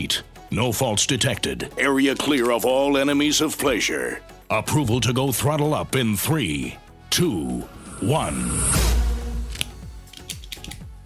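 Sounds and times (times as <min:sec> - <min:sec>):
speech: 0:00.0 - 0:09.0
low hum: 0:07.6 - 0:09.6
cigar cutter clipping the cap of a cigar: 0:09.5 - 0:10.9.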